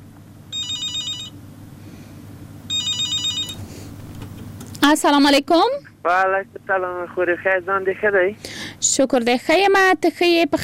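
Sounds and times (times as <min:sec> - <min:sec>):
telephone warbling electronic ringing for an incoming call: 0:00.5 - 0:01.4, 0:02.7 - 0:03.6
speech: 0:04.8 - 0:10.6.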